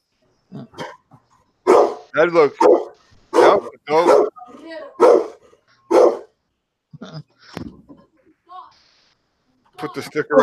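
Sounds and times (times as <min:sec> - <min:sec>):
big dog barking with deep gruff woofs: 0:01.6 - 0:04.4, 0:05.0 - 0:06.3
speech: 0:02.2 - 0:02.8, 0:03.6 - 0:05.2, 0:09.8 - 0:10.4.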